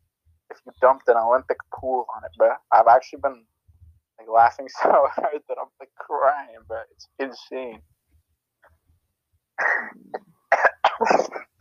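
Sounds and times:
speech: 0.6 - 3.5, 4.2 - 7.9
drawn-out hacking cough and raspy coughing bursts: 9.6 - 11.5.

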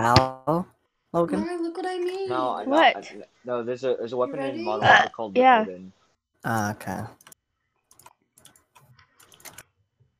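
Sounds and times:
speech: 0.0 - 7.3
aggressive typing on a computer keyboard: 7.2 - 9.6.

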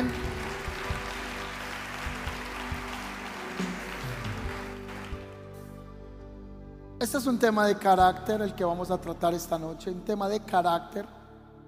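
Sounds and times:
church audience applause: 0.0 - 5.5
speech: 7.0 - 11.2.

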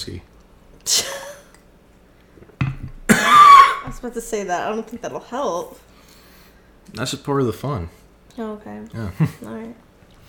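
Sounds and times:
speech: 0.0 - 1.1, 4.0 - 5.9, 6.9 - 10.2
person coughing: 3.1 - 3.8.

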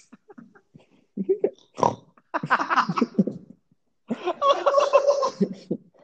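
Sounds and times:
voice imitating a pig oinking: 1.2 - 2.1
laughter: 2.4 - 3.4, 4.1 - 5.8.

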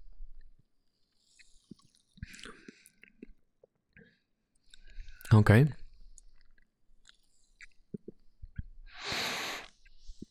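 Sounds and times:
person sipping a drink: 1.3 - 3.8, 6.3 - 10.3
speech: 5.3 - 5.8.

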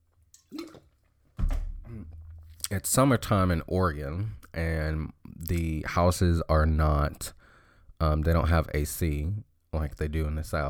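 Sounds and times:
parched person sipping water: 0.4 - 1.0
speech: 1.9 - 7.4, 8.0 - 10.6.

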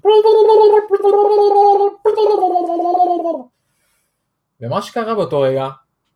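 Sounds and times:
beatbox tongue roll buzzing trill: 0.0 - 3.4
speech: 4.8 - 5.8.

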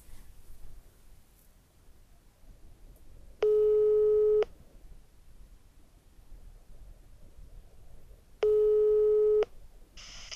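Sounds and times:
telephone ringback tone beeps: 3.4 - 4.4, 8.4 - 9.4.

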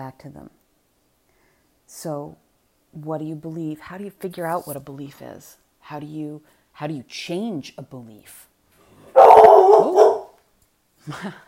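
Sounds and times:
speech: 0.0 - 0.6, 1.9 - 8.5, 11.0 - 11.4
dog barking: 9.1 - 10.4.

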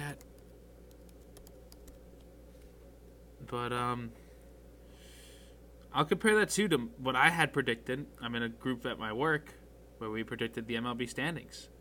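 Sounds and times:
typing on a computer keyboard: 0.0 - 2.0
speech: 3.5 - 4.2, 5.9 - 11.7.

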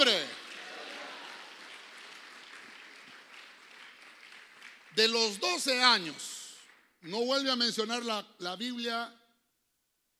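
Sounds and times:
church audience applauding during a sermon: 0.0 - 7.8
speech: 5.0 - 6.4, 7.0 - 9.2.

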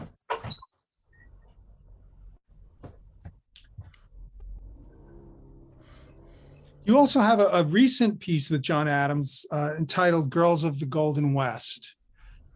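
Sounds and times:
steady hum of outside air and room noise: 3.2 - 7.7
door low sliding rumble: 4.2 - 7.4
speech: 6.9 - 12.0.

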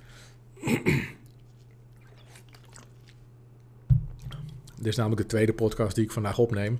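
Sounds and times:
steady low hum: 0.0 - 6.7
swallow: 0.7 - 3.2
person sipping water: 1.1 - 3.4, 4.2 - 4.8
faint wet mouth clicks: 1.2 - 3.3
speech: 4.8 - 6.7.

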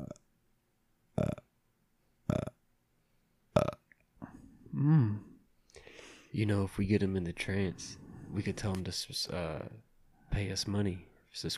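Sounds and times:
person burping: 0.0 - 0.2, 1.2 - 1.4, 2.3 - 2.6, 3.6 - 5.3
speech: 6.4 - 11.5.

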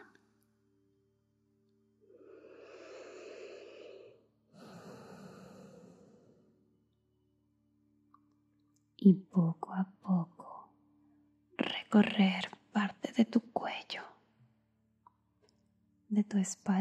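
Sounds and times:
soft breathing, slow inhale and breathy exhale: 2.0 - 6.7
speech: 9.0 - 10.3, 11.9 - 14.0, 16.2 - 16.7.

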